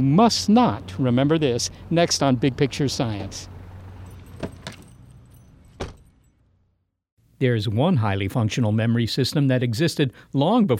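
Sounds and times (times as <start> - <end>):
speech: 0.0 - 3.5, 7.4 - 10.7
keys jangling: 3.9 - 6.4.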